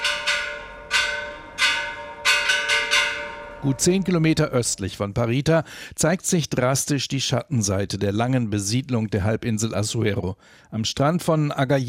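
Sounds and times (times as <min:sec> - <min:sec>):
church bell drummed rather than struck: 0:00.0 - 0:04.5
speech: 0:03.6 - 0:11.8.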